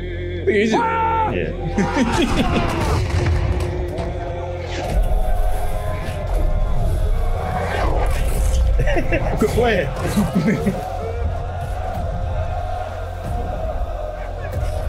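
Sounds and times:
speech: 0.4s - 3.4s, 8.9s - 10.9s
voices shouting in a battle scene: 0.5s - 3.1s, 4.1s - 14.8s
laughter: 1.4s - 4.0s, 8.4s - 14.8s
cannon fire in a battle scene: 2.8s - 3.9s.

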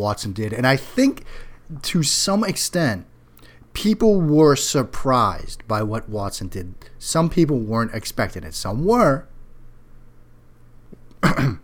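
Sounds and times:
speech: 0.0s - 3.1s, 3.8s - 9.3s, 11.2s - 11.6s
cough and throat clearing: 11.2s - 11.6s.

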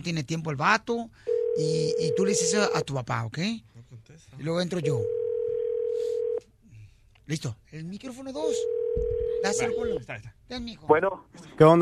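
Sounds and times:
speech: 0.0s - 5.2s, 7.3s - 11.7s
telephone dial or ringing tone on a call: 1.3s - 2.8s, 4.8s - 6.4s, 8.5s - 10.0s.

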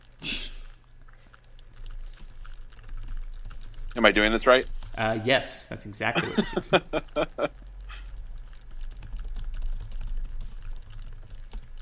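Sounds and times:
low steady hum: 0.0s - 11.8s
typing on a computer keyboard: 1.4s - 5.0s, 6.9s - 11.8s
speech: 4.0s - 7.6s
laughter: 6.1s - 7.5s.

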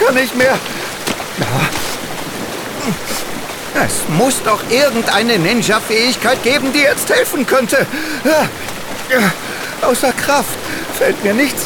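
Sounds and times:
brief tonal cries or voice fragments: 0.0s - 2.0s, 2.8s - 11.6s
rushing river current: 0.0s - 11.6s
speech: 0.1s - 0.8s, 2.8s - 11.6s.

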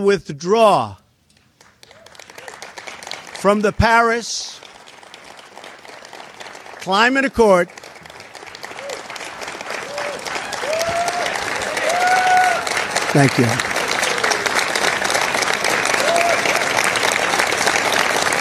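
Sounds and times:
speech: 0.0s - 1.0s, 3.4s - 4.7s, 6.8s - 7.8s, 13.2s - 13.7s
audience clapping at a political speech: 1.4s - 18.3s.

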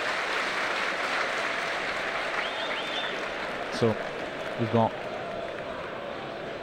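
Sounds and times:
stadium crowd of football fans applauding visiting supporters: 0.0s - 6.6s
faint whistles from the stands: 2.4s - 3.2s
speech: 3.8s - 5.1s.

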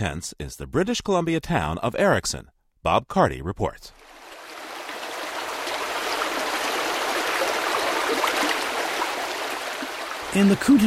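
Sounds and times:
speech: 0.0s - 4.2s, 10.3s - 10.8s
mountain creek gurgling through snowy forest in the Kootenai Mountains of British Columbia: 4.0s - 10.8s.

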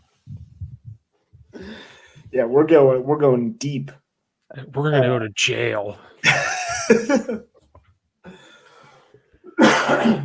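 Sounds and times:
faint breathy sounds: 1.4s - 2.4s, 8.2s - 9.4s
speech: 2.3s - 7.5s
laughter: 6.2s - 7.6s
person's dry harsh cough: 9.5s - 10.2s.

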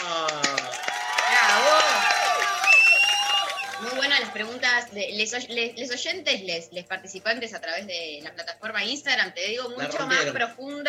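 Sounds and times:
small group whooping and cheering: 0.0s - 4.6s
excited voices: 0.0s - 4.8s
small group applauding: 0.0s - 4.9s
speech: 4.4s - 10.8s.

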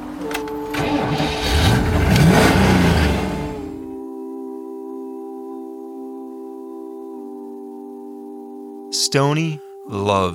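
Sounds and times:
Cyclone car engine loaded with passengers cranking and revving: 0.0s - 3.8s
speech: 9.1s - 10.3s.

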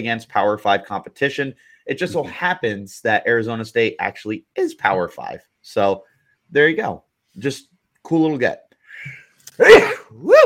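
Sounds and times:
speech: 0.0s - 10.4s
sneeze: 9.5s - 10.4s.

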